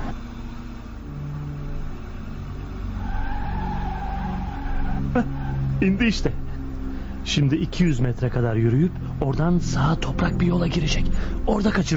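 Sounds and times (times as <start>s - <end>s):
minibus brakes or tires squealing while slowing to a stop: 0.0s - 11.9s
minibus engine rumbling low and steady: 0.0s - 11.9s
speech: 5.2s - 6.4s, 7.2s - 11.9s.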